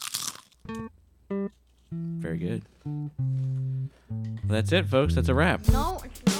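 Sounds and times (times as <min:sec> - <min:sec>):
someone biting into potato chips: 0:00.0 - 0:00.8
speech: 0:02.3 - 0:06.3.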